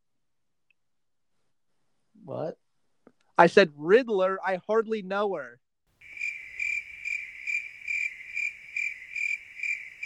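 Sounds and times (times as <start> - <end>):
speech: 2.3 - 2.6, 3.4 - 5.6
cricket chirping sound effect: 6.0 - 10.0.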